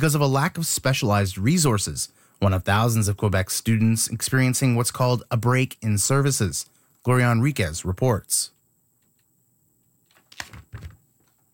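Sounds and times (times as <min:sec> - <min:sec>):
speech: 0:00.0 - 0:08.6
pens and school supplies clattering and clicking: 0:10.0 - 0:11.5.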